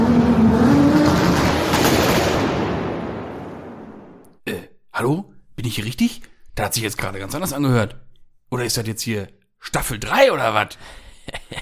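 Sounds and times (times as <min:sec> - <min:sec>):
car engine starting and revving: 0:00.0 - 0:04.2
speech: 0:05.0 - 0:11.6
laughter: 0:11.1 - 0:11.6.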